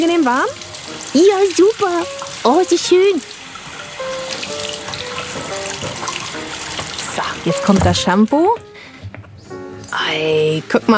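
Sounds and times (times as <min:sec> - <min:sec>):
tap water running into a sink: 0:00.0 - 0:08.6
speech: 0:00.1 - 0:03.3, 0:07.2 - 0:08.6, 0:10.0 - 0:10.9.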